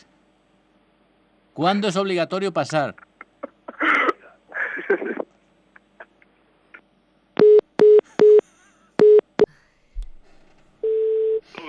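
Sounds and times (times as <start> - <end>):
speech: 1.6 - 3.1
phone busy tone beeps after a dropped call: 7.4 - 8.4, 9.0 - 9.3, 10.8 - 11.4.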